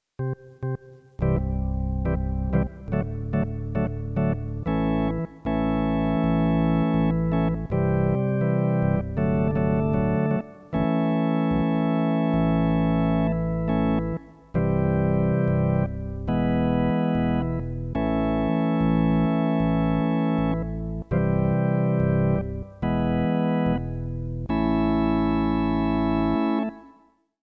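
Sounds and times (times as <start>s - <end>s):
organ prelude: 0.2s - 27.1s.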